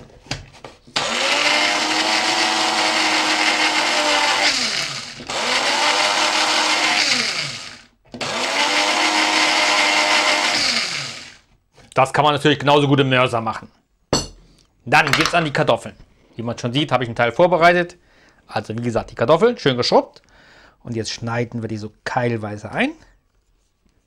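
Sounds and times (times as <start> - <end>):
kitchen blender mixing olive oil with pepper: 1.0 - 11.5
speech: 12.0 - 13.8, 14.8 - 23.1.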